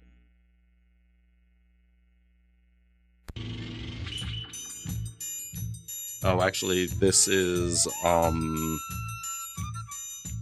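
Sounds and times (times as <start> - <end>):
speech: 6.2 - 9.1
old song in background with chime-like notes and bass pulse: 6.2 - 10.4.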